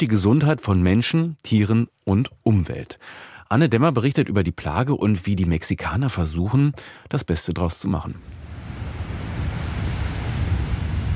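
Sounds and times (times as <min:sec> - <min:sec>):
speech: 0:00.0 - 0:08.5
gentle waves washing onto a beach: 0:08.2 - 0:11.1.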